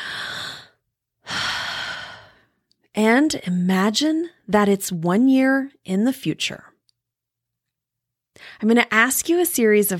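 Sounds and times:
deep cleansing breaths during a guided visualization exercise: 0:00.0 - 0:02.6
speech: 0:03.0 - 0:06.7, 0:08.4 - 0:09.9.

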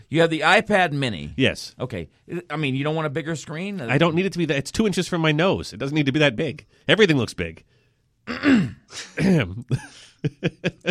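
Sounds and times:
speech: 0:00.1 - 0:10.8
person clearing throat: 0:08.2 - 0:09.9
laughter: 0:09.7 - 0:10.8.

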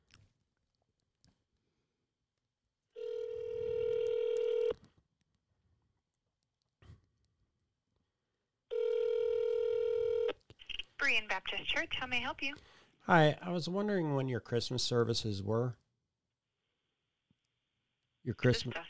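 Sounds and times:
outgoing telephone call ring tones on speakerphone: 0:03.0 - 0:04.8, 0:08.7 - 0:10.4
speech: 0:11.1 - 0:15.8, 0:18.2 - 0:18.8.

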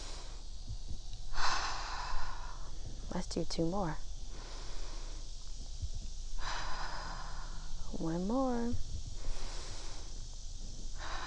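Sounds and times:
deep breath inhale: 0:01.3 - 0:03.1, 0:04.2 - 0:07.9, 0:09.1 - 0:11.2
speech: 0:03.1 - 0:04.0, 0:08.0 - 0:08.9.

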